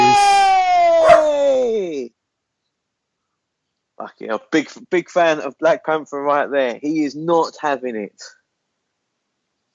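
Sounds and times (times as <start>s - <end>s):
dog howling scared by Diwali fireworks: 0.0s - 1.5s
dog barking scared by Diwali fireworks: 1.0s - 1.4s
speech: 4.1s - 8.4s.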